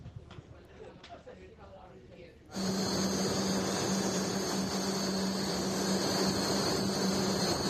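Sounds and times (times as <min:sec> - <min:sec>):
supercomputer fans humming in a room at the Donostia International Physics Center: 0:02.6 - 0:07.6.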